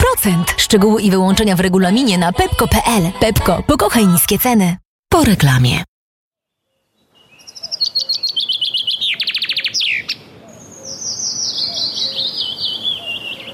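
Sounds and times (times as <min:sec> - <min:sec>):
speech: 0:00.1 - 0:05.9
common chaffinch singing: 0:07.1 - 0:13.5.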